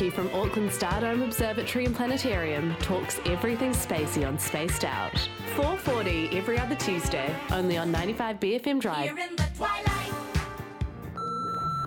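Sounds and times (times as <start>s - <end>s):
speech: 0.0s - 10.0s
voicemail beep: 11.1s - 11.8s.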